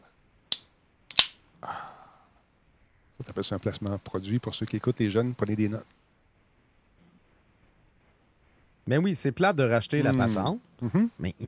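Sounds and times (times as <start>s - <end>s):
can of iced herbal tea opening with metallic click: 0.5s - 1.4s
speech: 3.2s - 6.0s, 8.9s - 11.4s.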